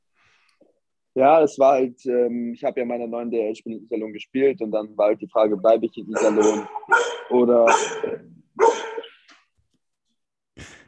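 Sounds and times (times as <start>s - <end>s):
speech: 1.2s - 8.7s
dog barking: 6.1s - 9.2s.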